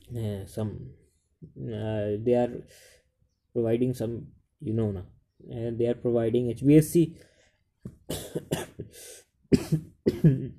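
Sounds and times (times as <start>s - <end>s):
speech: 0.1s - 3.0s, 3.6s - 10.5s
person coughing harshly: 8.1s - 10.5s.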